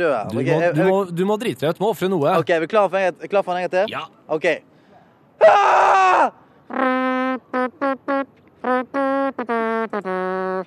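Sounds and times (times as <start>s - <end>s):
speech: 0.0s - 4.7s, 5.4s - 10.6s
person screaming and wailing: 5.4s - 6.4s.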